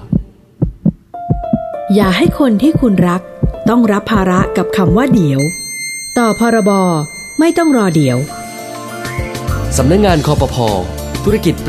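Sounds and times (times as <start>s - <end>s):
rapid heartbeat thumping in lub-dub pairs: 0.0s - 5.5s
steady electronic tone: 0.7s - 10.2s
speech: 1.9s - 5.6s, 6.2s - 8.4s, 9.7s - 11.6s.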